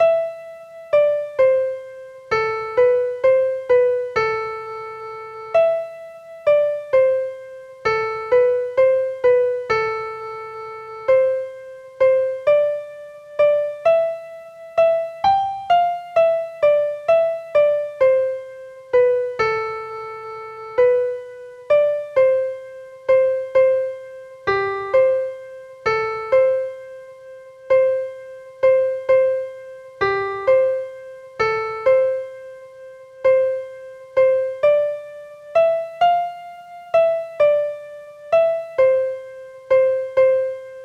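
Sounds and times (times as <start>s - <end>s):
piano playing: 0.0s - 40.8s.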